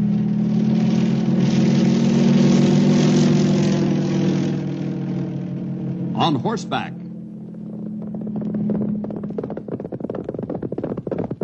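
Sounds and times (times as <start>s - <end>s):
propeller airplane engine droning: 0.0s - 11.4s
speech: 6.3s - 7.0s.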